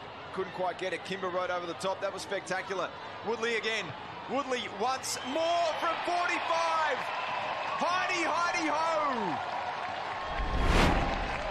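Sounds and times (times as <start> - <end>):
speech: 0.4 - 9.6
football crowd cheering and applauding at a suburban oval: 4.3 - 11.4.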